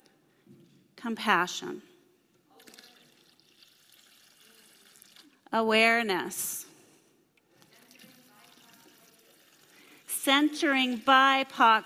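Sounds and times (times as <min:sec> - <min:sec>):
speech: 0:01.0 - 0:01.9, 0:05.5 - 0:06.7, 0:10.2 - 0:11.8
water poured into a container: 0:02.5 - 0:05.5, 0:07.7 - 0:10.2.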